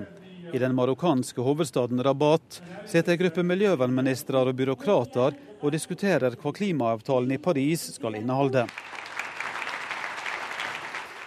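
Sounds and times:
speech: 0.5s - 9.0s
crowd applause at a conference: 8.6s - 11.2s.

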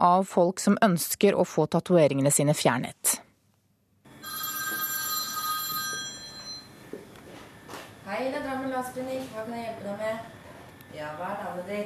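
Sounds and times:
speech: 0.0s - 3.2s, 8.1s - 11.8s
telephone ringing at reception of a laser tattoo-removal clinic in Drammen Norway: 4.1s - 6.9s.

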